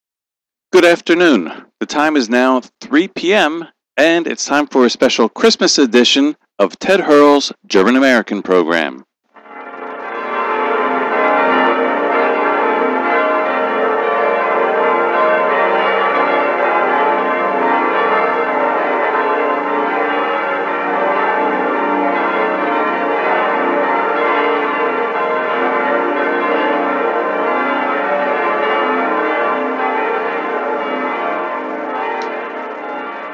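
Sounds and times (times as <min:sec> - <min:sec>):
speech: 0:00.8 - 0:09.1
cathedral bells ringing for Christmas in Würzburg: 0:09.4 - 0:33.3.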